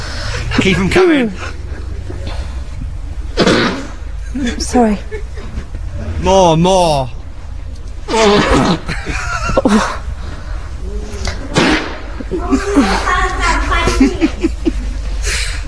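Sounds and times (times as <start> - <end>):
chuckling and snickering laughter: 0.4 - 2.5, 4.2 - 6.0, 8.4 - 10.1, 11.4 - 15.6
speech: 0.6 - 1.6, 4.4 - 5.3, 6.2 - 7.2, 8.1 - 10.0
loud farting: 3.4 - 4.0.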